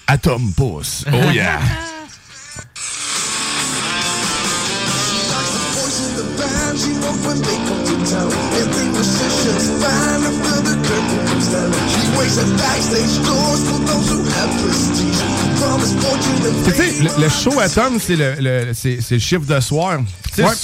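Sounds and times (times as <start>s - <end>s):
speech: 0.1s - 1.9s, 6.8s - 20.6s
laughter: 1.0s - 2.6s, 16.6s - 17.8s
heavy metal cover song from small cell phone speaker: 2.9s - 17.9s.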